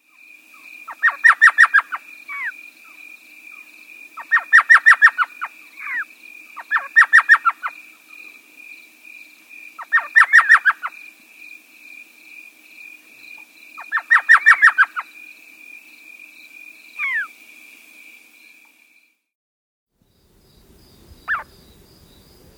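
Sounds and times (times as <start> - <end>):
Elf Owl calling: 0.9 - 2.6, 4.2 - 6.0, 6.6 - 7.8, 9.8 - 11.0, 13.8 - 15.1, 17.0 - 17.3, 21.2 - 21.6.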